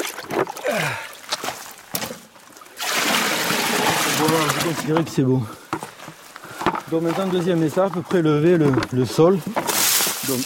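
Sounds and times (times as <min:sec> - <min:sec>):
river water sloshing and splashing into a large container: 0:00.0 - 0:05.0, 0:09.6 - 0:10.4
speech: 0:04.6 - 0:05.6, 0:06.9 - 0:09.6.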